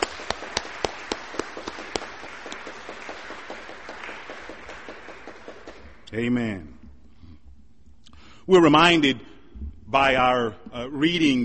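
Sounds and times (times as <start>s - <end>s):
audience applauding: 0.0s - 6.1s
speech: 6.1s - 6.8s, 8.5s - 9.3s, 9.9s - 11.4s.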